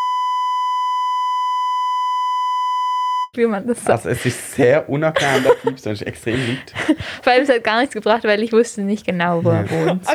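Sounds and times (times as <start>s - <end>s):
censor bleep high-pitched electronic tone: 0.0s - 3.3s
speech: 3.4s - 10.1s
laughter: 3.5s - 8.0s, 9.2s - 10.1s.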